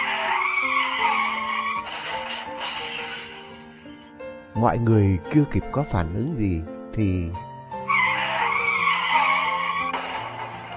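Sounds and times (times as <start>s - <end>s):
truck tires skidding while braking hard: 0.0s - 4.0s, 7.9s - 10.7s
speech: 4.6s - 7.5s.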